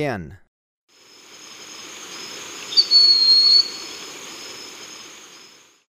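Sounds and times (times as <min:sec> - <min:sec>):
background drone of insects in Ecuador: 0:00.9 - 0:05.9
broad-winged hawk thin high whistle in Ecuador: 0:02.8 - 0:03.8.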